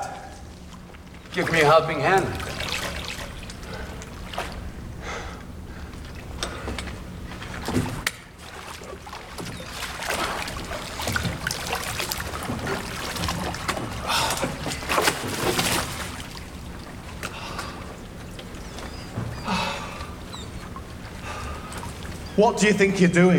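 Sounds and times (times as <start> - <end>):
faint birds calling: 0.0 - 8.0, 9.1 - 14.9, 16.0 - 23.3
small rowboat moving through water: 0.0 - 23.3
splashes and knocks of a rowboat: 0.8 - 4.7, 6.0 - 17.8
speech: 1.3 - 2.4, 22.4 - 23.3.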